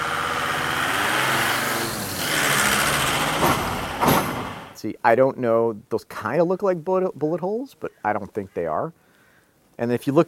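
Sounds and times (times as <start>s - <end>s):
heavy trucks rumbling past: 0.0s - 4.8s
speech: 4.8s - 9.0s, 9.8s - 10.2s.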